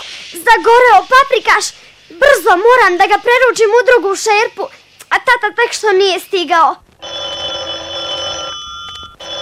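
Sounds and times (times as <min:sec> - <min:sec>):
speech: 0:00.5 - 0:06.9
telephone ringing with a bright buzzing electronic tone: 0:07.0 - 0:09.4.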